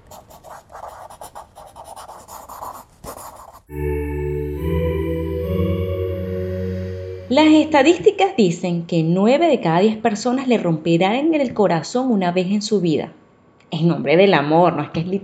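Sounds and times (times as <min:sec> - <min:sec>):
pencil writing on paper: 0:00.0 - 0:03.7
speech: 0:03.7 - 0:04.0, 0:07.3 - 0:15.2
sustained tonal musical passage: 0:03.7 - 0:08.4.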